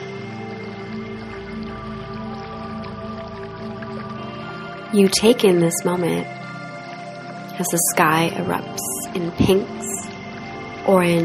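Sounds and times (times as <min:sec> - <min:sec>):
gentle waterfall: 0:00.0 - 0:11.2
speech: 0:04.9 - 0:06.4, 0:07.6 - 0:09.8, 0:10.9 - 0:11.2.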